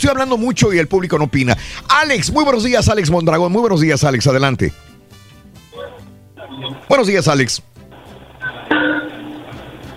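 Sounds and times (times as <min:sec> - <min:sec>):
speech: 0:00.0 - 0:04.9, 0:06.6 - 0:07.7
sharp metallic hammer strikes: 0:08.7 - 0:09.4.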